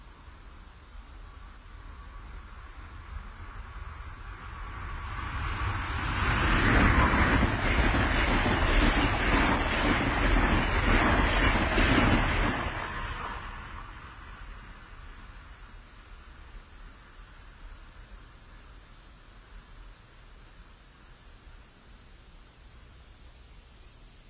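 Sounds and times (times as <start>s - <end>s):
Metroliner express train rushing past at 115 miles an hour: 1.7s - 18.1s.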